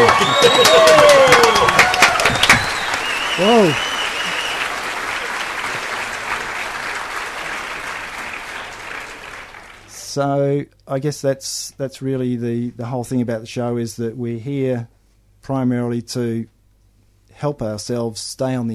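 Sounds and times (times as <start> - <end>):
audience whoops: 0.0 - 4.7
studio audience applauding: 0.0 - 10.1
speech: 10.2 - 16.6, 17.4 - 18.7.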